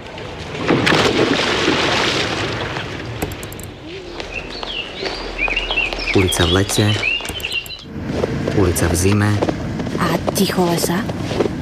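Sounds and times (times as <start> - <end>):
splashing churning water in an outdoor swimming pool: 0.0 - 7.6
bird chirps: 3.2 - 7.9
speech: 6.2 - 7.1, 8.6 - 11.4.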